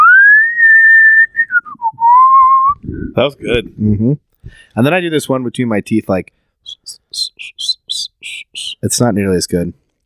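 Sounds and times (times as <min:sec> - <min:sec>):
person whistling a tune: 0:00.0 - 0:03.0, 0:06.7 - 0:08.8
speech: 0:03.2 - 0:07.7, 0:08.8 - 0:09.8.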